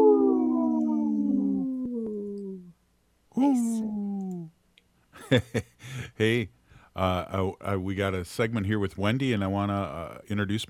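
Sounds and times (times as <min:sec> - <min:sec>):
wolf howling: 0:00.0 - 0:02.7
speech: 0:03.4 - 0:04.0, 0:05.3 - 0:10.6.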